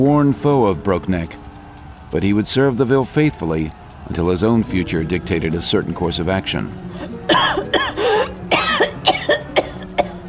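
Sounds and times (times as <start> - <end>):
speech: 0.0 - 1.4, 2.1 - 7.8
boy coughing from thick fire smoke: 7.3 - 10.2.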